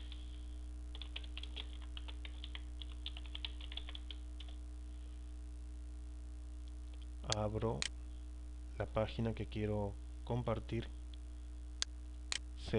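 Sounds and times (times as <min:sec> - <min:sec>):
steady low electrical hum: 0:00.0 - 0:12.7
typing on a computer keyboard while entering a web address: 0:00.9 - 0:04.6
speech: 0:07.4 - 0:08.0, 0:08.8 - 0:11.0.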